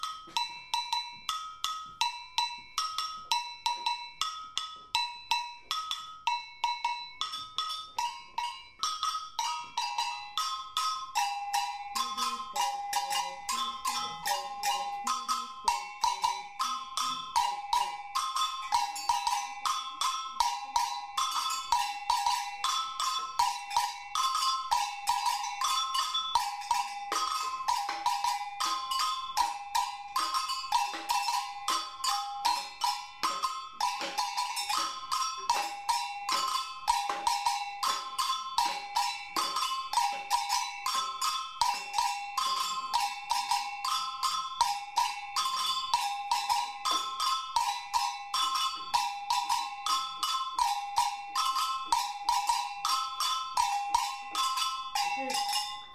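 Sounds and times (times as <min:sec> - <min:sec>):
afoxe agogo bell: 0:00.0 - 0:55.9
batucada drumming: 0:00.0 - 0:55.9.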